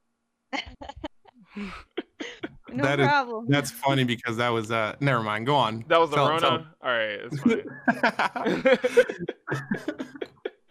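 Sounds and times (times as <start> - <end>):
laughter: 0.6 - 10.6
speech: 1.6 - 1.9, 2.7 - 10.3
harsh coughing while smoking weed: 1.6 - 3.1, 8.4 - 10.6.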